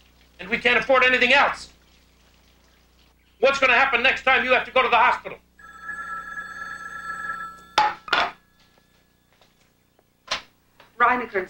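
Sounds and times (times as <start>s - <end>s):
speech: 0.4s - 1.7s, 3.4s - 5.4s, 11.0s - 11.4s
telephone bell ringing: 5.6s - 9.4s.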